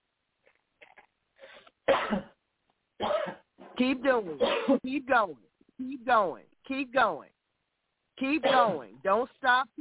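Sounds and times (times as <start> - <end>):
person forcing deep harsh chest coughs: 1.9 - 2.4, 3.0 - 3.5, 4.4 - 4.9, 8.4 - 8.9
speech: 3.8 - 7.3, 8.2 - 9.7.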